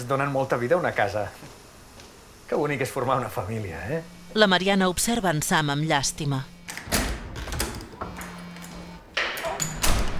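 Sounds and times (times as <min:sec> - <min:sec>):
speech: 0:00.0 - 0:01.6, 0:02.5 - 0:06.5
door pulled shut with a solid thump: 0:06.7 - 0:10.1.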